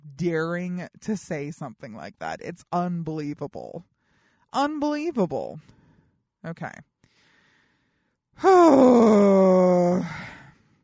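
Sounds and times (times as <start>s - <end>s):
speech: 0.2s - 3.9s, 4.5s - 5.8s, 6.4s - 6.9s, 8.4s - 10.4s
person letting out a long guttural groan: 8.4s - 10.4s.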